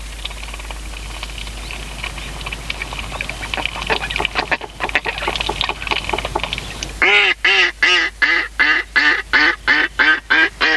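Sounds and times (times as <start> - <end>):
busy chattering mallard calls: 0.0 - 7.0
mallard quacking: 3.0 - 10.7.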